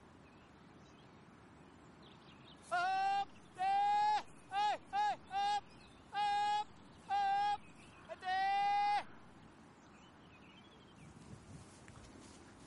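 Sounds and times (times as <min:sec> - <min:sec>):
person calling sing-song herding cries to drive cows: 0:02.7 - 0:09.1.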